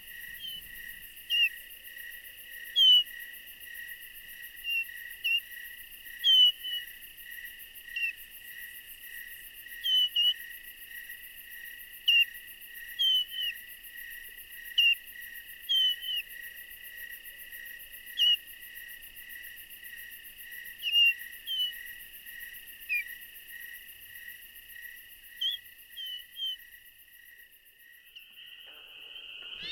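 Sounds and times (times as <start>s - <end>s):
crickets and other night insects droning: 0.0s - 29.7s
thrush flight calls at night during migration: 28.4s - 29.7s.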